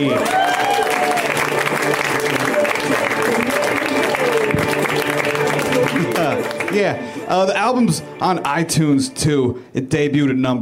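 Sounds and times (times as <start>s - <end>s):
speech: 0.0s - 0.4s, 6.8s - 10.6s
audience applause: 0.0s - 7.0s.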